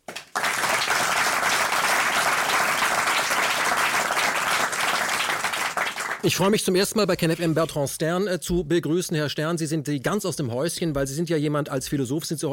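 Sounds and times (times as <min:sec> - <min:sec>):
audience applause: 0:00.0 - 0:06.5
speech: 0:06.2 - 0:12.5.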